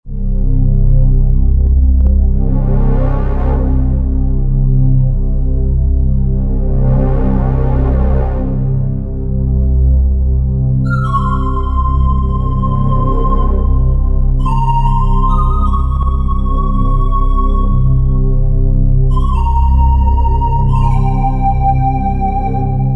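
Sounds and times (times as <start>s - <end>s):
pipe drone on a Roland JV-2080 synthesizer: 0.0s - 22.9s.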